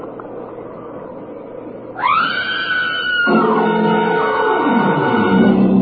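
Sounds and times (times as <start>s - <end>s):
woman screaming inside a barn: 2.0s - 5.6s.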